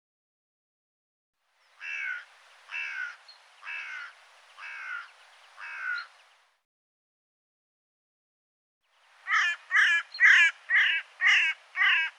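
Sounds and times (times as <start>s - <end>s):
bird calling with harsh hoarse caws: 1.8s - 6.2s, 9.2s - 12.1s.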